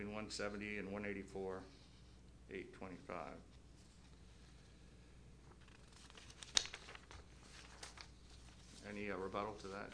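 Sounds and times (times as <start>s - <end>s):
speech: 0.0s - 1.8s, 2.5s - 3.6s, 8.8s - 9.9s
two sheets of paper rustling and crinkling at a hearing: 5.5s - 9.9s.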